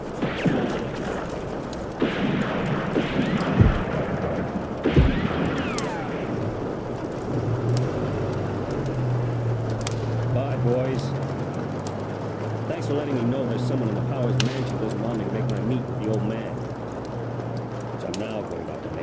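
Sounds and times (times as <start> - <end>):
heavy thumps: 0.0 - 7.6
steady noisy wash: 0.0 - 17.2
car engine rumbling as the car pulls away: 0.0 - 19.0.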